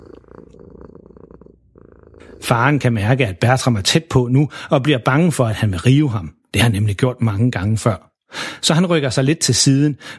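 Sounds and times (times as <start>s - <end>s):
cat purring loudly while rubbing against a large ball of yarn: 0.0s - 3.0s
speech: 2.2s - 10.1s.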